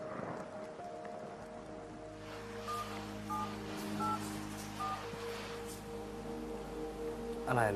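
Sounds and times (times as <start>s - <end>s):
steady rain hissing: 0.0s - 7.7s
short paired electronic beeps: 4.8s - 5.0s
speech: 7.5s - 7.7s.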